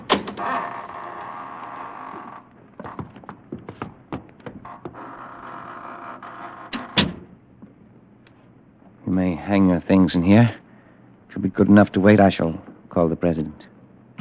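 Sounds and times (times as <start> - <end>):
heavy door creaking and scraping open: 0.0 - 7.4
knocks and rattles: 2.8 - 5.1
speech: 9.5 - 10.6, 11.4 - 13.7.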